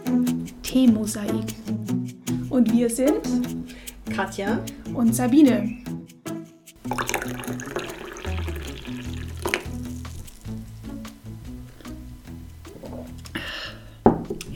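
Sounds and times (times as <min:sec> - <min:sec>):
speech: 0:00.7 - 0:01.8, 0:02.5 - 0:05.8, 0:06.9 - 0:07.8
hot water poured into a cup over fresh mint and ginger: 0:06.8 - 0:10.6.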